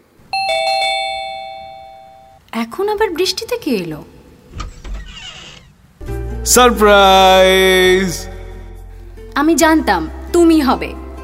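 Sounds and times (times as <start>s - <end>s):
electronic doorbell chime: 0.3s - 2.4s
speech: 2.6s - 4.6s, 6.4s - 8.3s, 9.4s - 11.0s.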